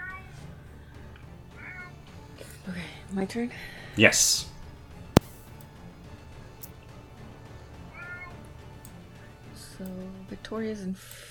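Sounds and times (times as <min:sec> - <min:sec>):
cat meowing: 0:01.6 - 0:02.0, 0:07.9 - 0:08.4
speech: 0:02.7 - 0:04.5, 0:10.3 - 0:11.3.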